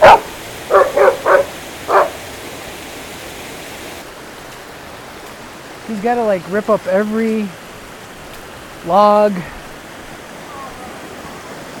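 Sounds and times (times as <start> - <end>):
dog barking: 0.0 - 2.2
speech: 5.9 - 7.6, 8.8 - 9.6.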